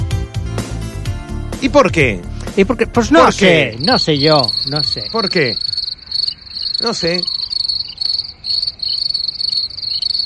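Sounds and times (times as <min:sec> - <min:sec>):
speech: 0:01.6 - 0:05.7, 0:06.8 - 0:07.6
crickets chirping in a high continuous trill: 0:03.0 - 0:10.2.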